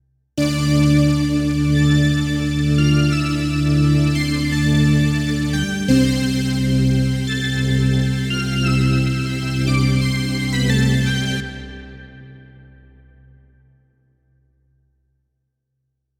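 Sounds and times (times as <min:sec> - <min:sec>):
Yamaha Reface YC organ synthesizer wave a: 0:00.4 - 0:11.9.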